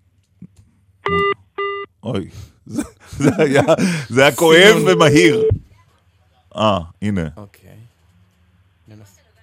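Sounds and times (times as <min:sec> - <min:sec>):
telephone busy signal on a call to a Knesset member's phone: 0:01.1 - 0:01.8, 0:04.6 - 0:05.6
speech: 0:02.1 - 0:05.6, 0:06.6 - 0:07.8
laughter: 0:02.7 - 0:05.4.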